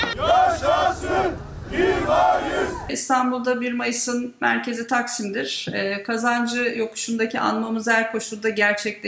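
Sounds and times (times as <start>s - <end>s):
large crowd chanting slogans in unison at a May Day rally in Mersin: 0.1s - 2.9s
overlapping group shouts: 0.2s - 2.9s
speech: 2.9s - 9.0s.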